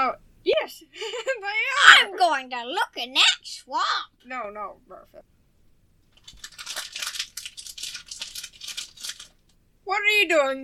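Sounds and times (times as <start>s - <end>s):
speech: 0.1s - 5.3s, 9.9s - 10.6s
person eating a sandwich: 6.0s - 9.6s.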